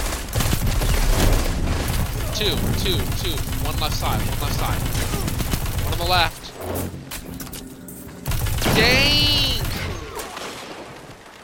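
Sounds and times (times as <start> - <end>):
video game gunfire in a multiplayer match: 0.0 - 6.4, 8.2 - 11.4
speech: 2.4 - 5.3, 5.9 - 7.0, 8.8 - 9.3.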